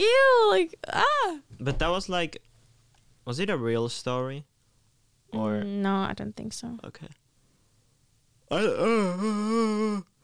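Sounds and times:
speech: 0.0 - 2.5, 3.2 - 4.5, 5.3 - 7.2, 8.5 - 10.1
person yawning: 8.5 - 10.2.

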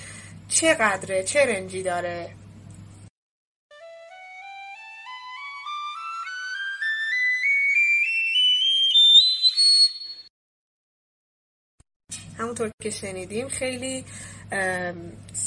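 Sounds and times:
speech: 0.5 - 2.4, 12.5 - 15.4
piccolo playing an ascending series of notes: 3.7 - 10.3.

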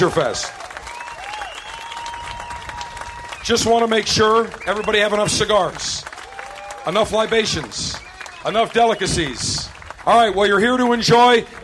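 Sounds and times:
speech: 0.0 - 0.6, 3.5 - 6.0, 6.8 - 11.6
crowd applauding: 0.0 - 11.6.

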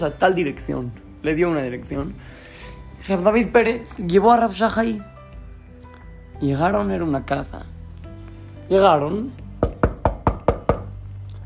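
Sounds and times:
speech: 0.0 - 5.1, 6.4 - 7.7, 8.7 - 9.4
knocking on a wooden door: 9.6 - 11.0.

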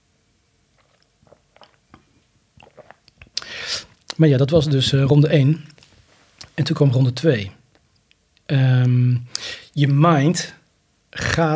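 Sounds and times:
person slurping a sip of a drink: 0.8 - 2.0, 2.6 - 4.0
wet mouth clicks: 0.8 - 3.5
lip smacks: 0.8 - 4.2
speech: 4.2 - 5.7, 6.6 - 7.6, 8.5 - 10.6, 11.4 - 11.5.

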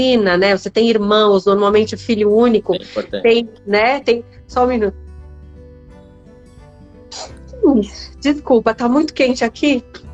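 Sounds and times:
speech: 0.0 - 5.0, 7.1 - 10.1
sneeze: 7.1 - 7.4.

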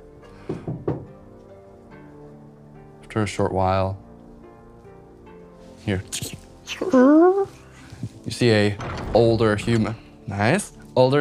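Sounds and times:
knocking on a wooden door: 0.4 - 1.2
speech: 3.1 - 4.0, 5.8 - 7.5, 8.3 - 11.1.

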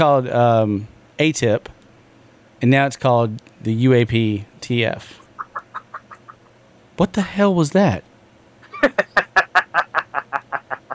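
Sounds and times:
speech: 0.0 - 1.8, 2.6 - 5.2, 7.0 - 8.1, 8.8 - 9.1
chicken squawking: 5.2 - 6.6
laughter: 5.3 - 6.5, 8.7 - 10.9.

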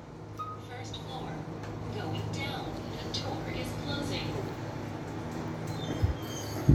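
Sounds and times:
elevator running with a low mechanical hum and rumble: 0.0 - 6.7
faint scattered squeaks: 5.7 - 6.7.

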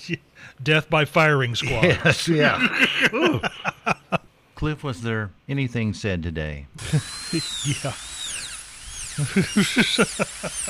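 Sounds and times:
speech: 0.0 - 4.0, 4.6 - 8.1, 9.2 - 10.6
faint hum: 0.0 - 10.6
laughter: 1.6 - 4.3, 6.8 - 8.0, 9.2 - 10.6
power drill whirring: 6.8 - 10.6.

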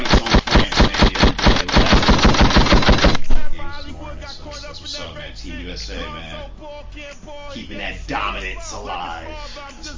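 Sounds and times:
gunshot sound effects like automatic fire: 0.0 - 3.2.

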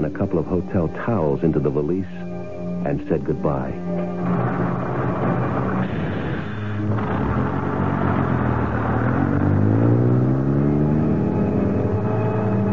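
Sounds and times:
speech: 0.0 - 4.4
bus engine accelerating with rising harmonic whine: 4.0 - 12.7.

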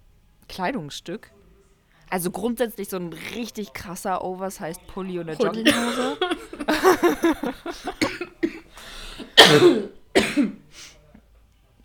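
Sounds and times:
speech: 0.6 - 1.4, 2.1 - 8.6, 9.4 - 10.6
person laughing: 5.4 - 8.5
person coughing harshly: 5.4 - 10.6.

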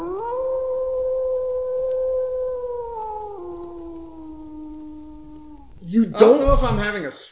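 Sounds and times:
long loud werewolf-like howl: 0.0 - 5.7
speech: 5.9 - 7.3.

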